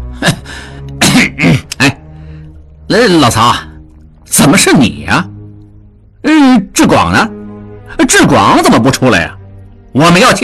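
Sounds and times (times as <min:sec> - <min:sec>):
speech: 0:00.2 - 0:00.8, 0:02.9 - 0:03.7, 0:04.3 - 0:05.3, 0:06.2 - 0:07.3, 0:08.0 - 0:09.4, 0:10.0 - 0:10.4
person coughing in a dramatized reading: 0:01.0 - 0:01.8.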